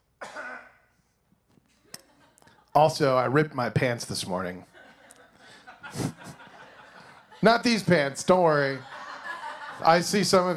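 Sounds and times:
person with a cold coughing: 0.2 - 0.9
laughter: 1.8 - 2.8, 4.7 - 10.5
speech: 2.8 - 4.7, 7.4 - 8.9, 9.8 - 10.5.

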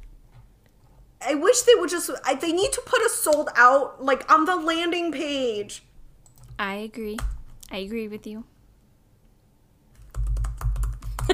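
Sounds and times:
low hum: 0.0 - 11.3
speech: 1.2 - 5.9, 6.6 - 8.5
rapid typing on a computer keyboard: 6.2 - 6.6, 9.9 - 11.3.

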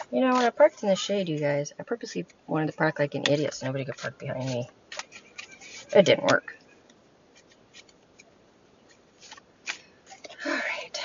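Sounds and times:
deck of tarot cards shuffling: 0.0 - 0.7, 3.1 - 6.5, 7.3 - 8.3, 8.9 - 10.4
speech: 0.1 - 4.8, 5.9 - 6.6.

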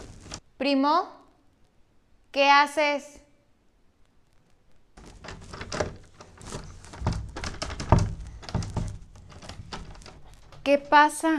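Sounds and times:
speech: 0.6 - 1.2, 2.3 - 3.2, 10.7 - 11.3
stuck closet door yanked and shoved, wooden thunks and rattles: 5.0 - 10.9.

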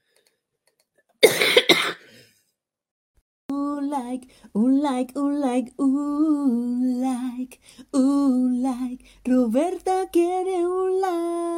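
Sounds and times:
forceful coughs trailing into a breathy rasp: 1.2 - 2.4
speech: 3.8 - 11.5.

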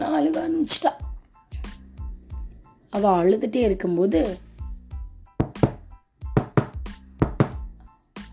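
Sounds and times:
speech: 0.2 - 1.0, 2.9 - 4.5
knocking on a door: 5.4 - 7.7.

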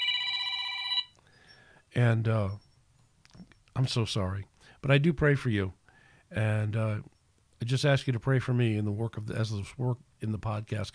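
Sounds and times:
telephone ringing with a bright electronic tone: 0.0 - 1.2
speech: 2.0 - 2.6, 3.8 - 10.9.

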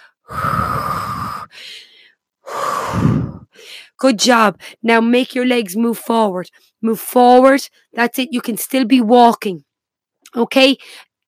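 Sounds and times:
heavy breathing while catching breath after a cardio workout: 0.0 - 4.0
speech: 4.0 - 9.7, 10.3 - 11.1.

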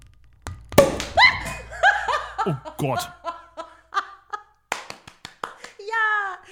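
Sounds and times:
sparkling wine cork popping out: 0.8 - 2.5
laughter: 1.2 - 4.4
speech: 2.4 - 3.2.

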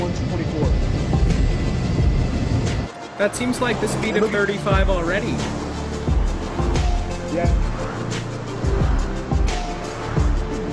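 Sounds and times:
road noise: 0.0 - 10.7
car passing by: 2.4 - 10.7
speech: 3.2 - 5.6, 7.3 - 7.7.

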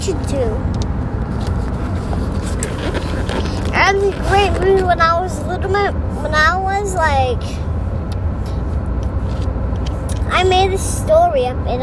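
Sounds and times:
car engine rumble heard from inside a moving vehicle: 0.0 - 11.8
tire-on-road noise heard from inside a moving vehicle: 0.0 - 11.8
speech: 0.1 - 0.8, 3.9 - 7.6, 10.3 - 11.8.

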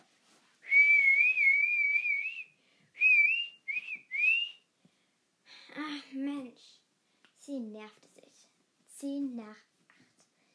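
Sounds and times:
person whistling in imitation of birds chirping: 0.7 - 4.6
speech: 9.0 - 9.7.

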